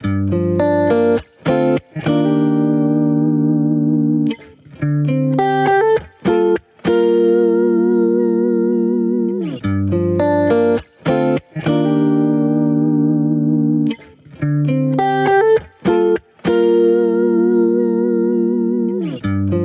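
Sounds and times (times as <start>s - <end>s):
electric guitar loop in G minor: 0.0s - 19.6s.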